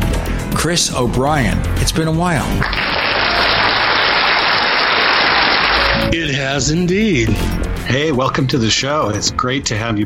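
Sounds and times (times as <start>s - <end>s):
speech: 0.6s - 3.0s, 6.1s - 10.0s
recorded crowd applauding as a welcome: 2.6s - 6.1s.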